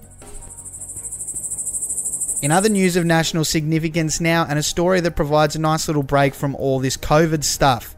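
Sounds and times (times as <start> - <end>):
dense chorus of grasshoppers chirping in Mount Isa: 0.0 - 3.4
speech: 2.4 - 7.9.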